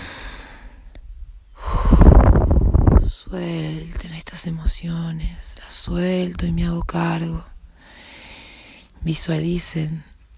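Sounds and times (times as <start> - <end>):
deep breathing, inhaling through nose, exhaling through mouth: 0.0 - 1.0, 1.6 - 3.1, 7.8 - 8.9
speech: 3.3 - 7.5, 9.0 - 10.1.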